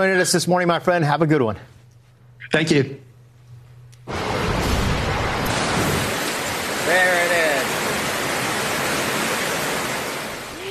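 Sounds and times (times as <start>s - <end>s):
speech: 0.0s - 1.7s, 2.5s - 3.1s
raging river torrent after heavy rain: 4.1s - 10.6s.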